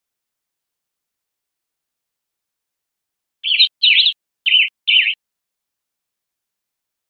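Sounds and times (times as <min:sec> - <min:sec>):
Western tanager singing burry warbled phrases: 0:03.4 - 0:05.2.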